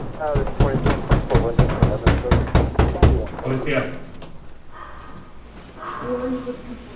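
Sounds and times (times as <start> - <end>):
officers knocking on an apartment door: 0.0 - 3.5
faint voices talking: 0.0 - 4.1, 5.8 - 6.9.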